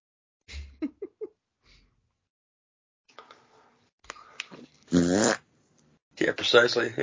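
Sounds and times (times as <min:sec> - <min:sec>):
low blurting fart: 0:04.9 - 0:05.5
speech: 0:05.1 - 0:05.4, 0:06.3 - 0:07.0.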